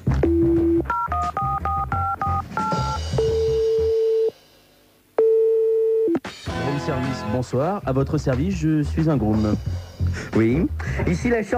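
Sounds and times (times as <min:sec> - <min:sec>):
two-tone telephone keypad beeps dialing a hotel room service number: 0:00.2 - 0:04.3
long steady telephone tone: 0:00.2 - 0:04.4, 0:05.2 - 0:06.2
speech: 0:07.2 - 0:11.5.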